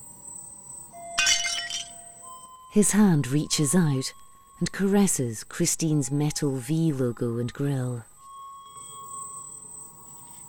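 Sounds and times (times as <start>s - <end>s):
blood-soaked shard of glass dropped and striking a surface: 1.2s - 2.1s
speech: 2.8s - 8.1s.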